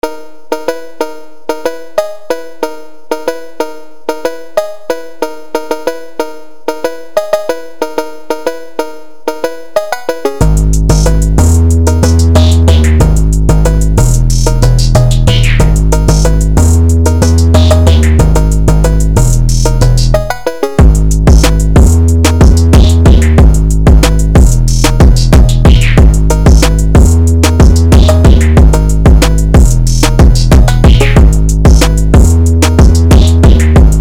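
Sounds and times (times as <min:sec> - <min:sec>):
phonk beat: 0:09.8 - 0:33.9.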